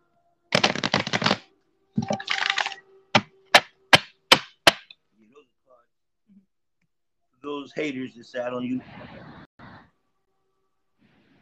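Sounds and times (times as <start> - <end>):
deck of cards riffle-shuffled: 0.5 - 1.4, 2.0 - 3.7
speech: 7.4 - 9.2.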